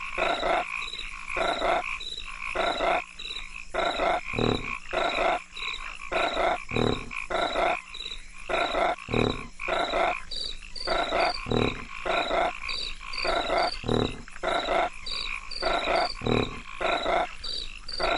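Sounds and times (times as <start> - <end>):
crickets chirping: 0.0 - 18.1
frogs calling: 0.0 - 18.1.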